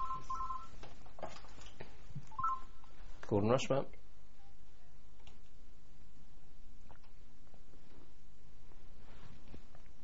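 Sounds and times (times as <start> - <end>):
telephone's electronic ring chirping in warbling bursts: 0.0 - 0.8, 2.3 - 2.7
speech: 3.3 - 4.0.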